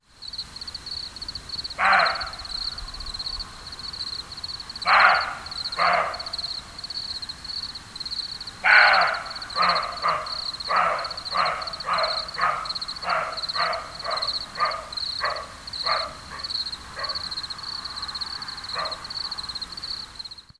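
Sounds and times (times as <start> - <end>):
barking at the Mindelsee: 1.8 - 2.8, 4.8 - 6.6, 8.6 - 17.4, 18.6 - 19.1.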